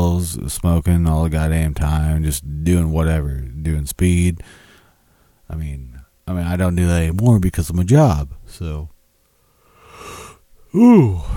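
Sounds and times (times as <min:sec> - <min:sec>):
speech: 0:00.2 - 0:04.6, 0:05.5 - 0:08.9, 0:10.7 - 0:11.3
person yawning: 0:10.0 - 0:11.3.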